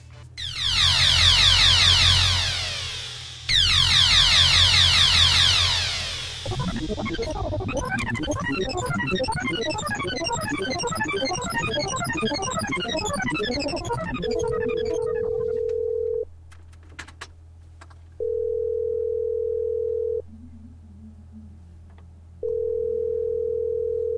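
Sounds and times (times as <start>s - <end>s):
dense swirling electronic warble: 0.4s - 15.7s, 20.2s - 22.6s
telephone ringing tone with long steady beeps: 6.5s - 16.3s, 18.2s - 20.4s, 22.4s - 24.1s.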